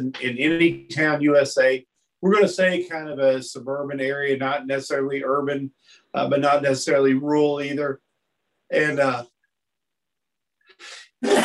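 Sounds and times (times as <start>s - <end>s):
speech: 0.0s - 8.0s, 8.7s - 9.3s, 10.8s - 11.4s
person sneezing: 10.8s - 11.4s.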